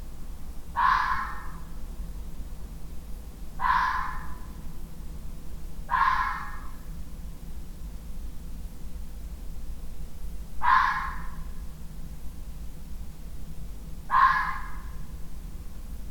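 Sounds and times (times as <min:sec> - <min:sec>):
fox giving harsh hoarse barks: 0:00.8 - 0:01.6, 0:03.6 - 0:04.4, 0:05.9 - 0:06.8, 0:10.6 - 0:11.4, 0:14.1 - 0:14.9.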